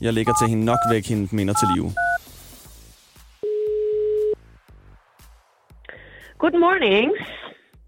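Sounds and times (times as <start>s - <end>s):
speech: 0.0s - 2.1s, 6.4s - 7.4s
quieter rhythmic music: 0.0s - 3.4s, 4.3s - 7.8s
telephone ringing tone of an outgoing call: 3.4s - 4.4s.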